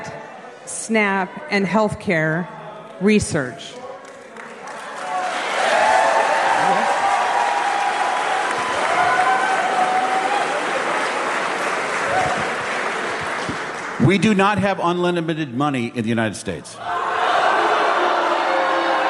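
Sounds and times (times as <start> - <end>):
speech: 0.9 - 3.8, 14.1 - 17.0
clapping: 3.7 - 14.0
unruly crowd shouting and jeering at a town hall: 5.0 - 11.0, 16.8 - 19.0.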